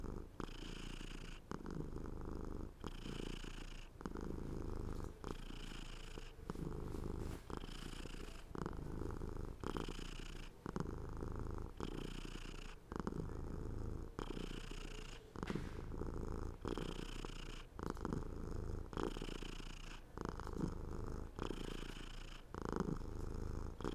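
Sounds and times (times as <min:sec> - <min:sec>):
domestic cat purring in a low rumbling drone: 0:00.0 - 0:23.9.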